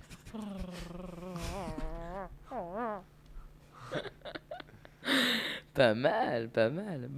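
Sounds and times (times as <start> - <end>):
several voices imitating dogs in a studio: 0.3 - 3.1
speech: 0.4 - 1.0, 5.8 - 7.1.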